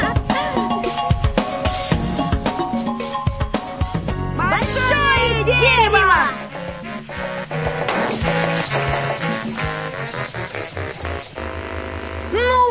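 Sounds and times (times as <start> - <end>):
upbeat music: 0.0 - 12.6.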